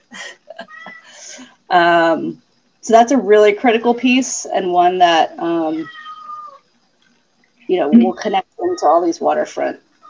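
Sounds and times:
speech: 0:01.7 - 0:06.0, 0:07.7 - 0:10.0
cat meowing: 0:05.8 - 0:06.6.

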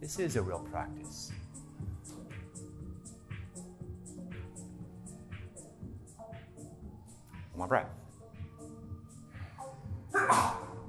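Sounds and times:
speech: 0:00.0 - 0:02.2, 0:07.6 - 0:08.0
person sneezing: 0:10.1 - 0:10.8.

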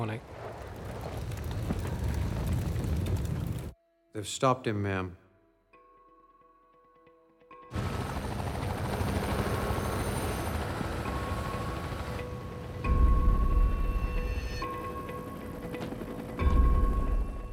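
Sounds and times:
speech: 0:00.0 - 0:00.4, 0:04.2 - 0:05.2
helicopter rotors chopping: 0:00.0 - 0:03.8, 0:07.7 - 0:13.5, 0:14.7 - 0:17.5.

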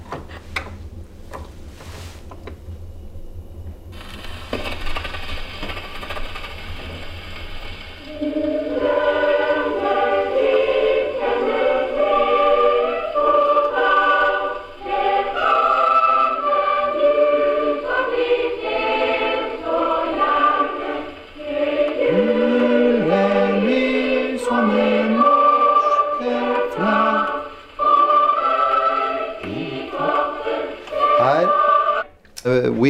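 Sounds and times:
melody of bright clear notes from a wound-up gramophone: 0:08.0 - 0:32.8.

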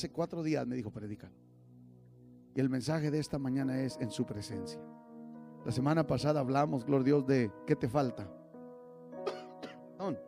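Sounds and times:
speech: 0:00.0 - 0:01.5, 0:02.6 - 0:05.0, 0:05.6 - 0:08.4, 0:10.1 - 0:10.2
person coughing: 0:09.2 - 0:09.9.

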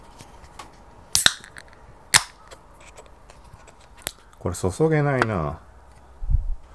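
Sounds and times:
beer can being cracked open: 0:01.2 - 0:03.1
speech: 0:04.4 - 0:05.7.

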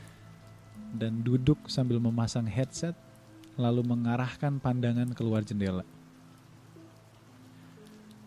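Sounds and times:
light rain pattering on a train window: 0:00.0 - 0:08.2
speech: 0:00.9 - 0:06.0.

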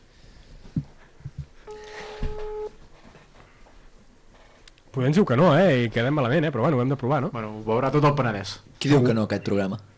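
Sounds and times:
soft thumps and handling noises: 0:00.4 - 0:04.6
telephone ringback tone of a radio station on-air call: 0:01.7 - 0:02.8
speech: 0:05.0 - 0:09.9.

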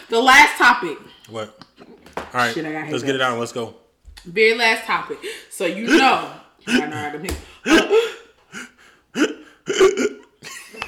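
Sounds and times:
speech: 0:00.1 - 0:01.7, 0:02.3 - 0:08.2
person hiccuping: 0:09.2 - 0:10.3.

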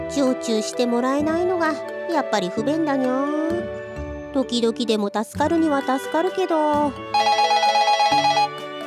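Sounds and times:
speech: 0:00.1 - 0:03.5, 0:04.3 - 0:07.4
telephone ringing with trilling electronic tones: 0:07.1 - 0:08.7.

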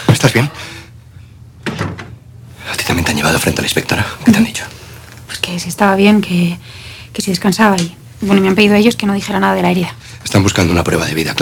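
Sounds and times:
speech: 0:00.2 - 0:00.7, 0:03.0 - 0:04.8, 0:05.5 - 0:11.3
museum office door pulled shut with a thud: 0:01.6 - 0:02.2.

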